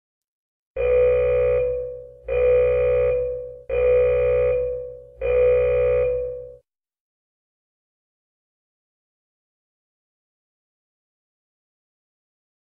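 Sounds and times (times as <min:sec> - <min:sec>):
warning alarm: 0:00.8 - 0:06.7.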